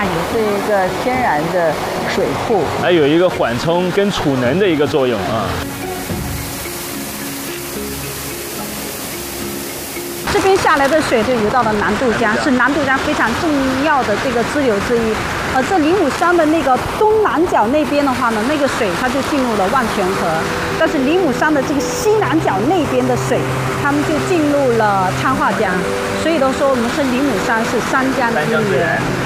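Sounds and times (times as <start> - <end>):
tropical rainforest mountain stream flowing: 0.0 - 29.2
speech: 0.3 - 5.8, 10.4 - 29.2.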